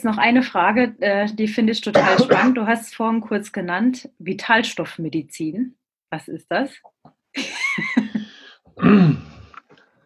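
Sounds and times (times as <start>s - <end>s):
speech: 0.0s - 8.1s, 8.8s - 9.3s
rough voiced cough: 1.9s - 2.6s, 8.8s - 9.4s
throat clearing: 8.8s - 9.5s.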